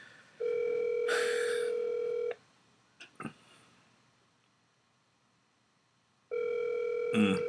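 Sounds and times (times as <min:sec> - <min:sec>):
outgoing phone call electronic ringback tone: 0:00.4 - 0:02.4, 0:06.3 - 0:07.4.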